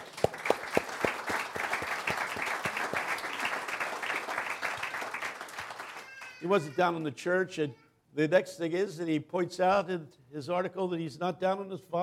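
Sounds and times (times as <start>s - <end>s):
audience applause in a hall at a spoken talk: 0.0s - 6.4s
speech: 6.4s - 12.0s.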